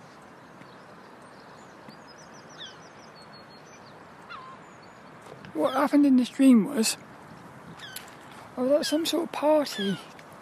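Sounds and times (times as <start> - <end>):
steady outdoor wind noise: 0.0 - 10.3
seagulls calling overhead: 2.5 - 3.0, 4.2 - 5.8, 7.7 - 10.2
speech: 5.6 - 7.1, 8.6 - 10.1.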